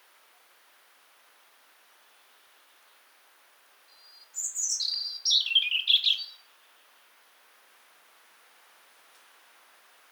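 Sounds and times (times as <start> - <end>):
European robin Erithacus rubecula singing whistles and liquid trills: 3.9 - 6.9.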